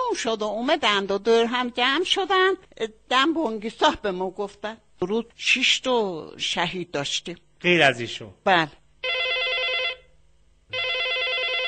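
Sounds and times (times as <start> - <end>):
speech: 0.1 - 8.8
telephone bell ringing: 9.0 - 11.6.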